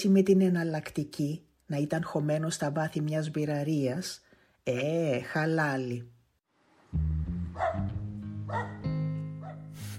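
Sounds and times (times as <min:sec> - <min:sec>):
speech: 0:00.0 - 0:06.2, 0:06.9 - 0:08.8
small dog barking and whining: 0:07.6 - 0:07.9, 0:08.5 - 0:09.7.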